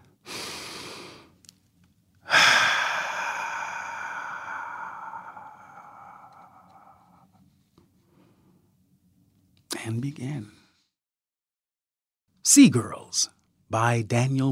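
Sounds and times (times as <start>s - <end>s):
single deep human breath: 0.1s - 1.4s, 2.2s - 8.6s
speech: 10.0s - 10.6s, 12.5s - 14.5s.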